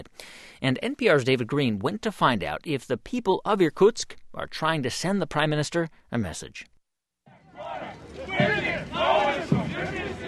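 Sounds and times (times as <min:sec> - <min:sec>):
speech: 0:00.6 - 0:06.7
Communist Party parade crowd shouting in Irkutsk, Russia: 0:07.3 - 0:10.2.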